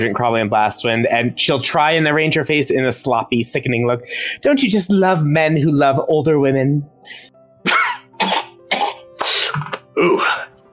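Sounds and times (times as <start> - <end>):
speech: 0.0 - 7.3
harsh raspy coughs: 7.6 - 10.4.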